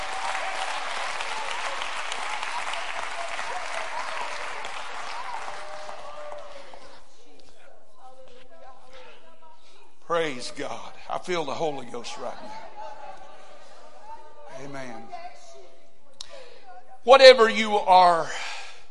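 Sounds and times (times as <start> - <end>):
large crowd clapping hands to praise God: 0.0 - 7.1
speech: 10.2 - 12.7, 14.6 - 15.3, 17.0 - 18.4.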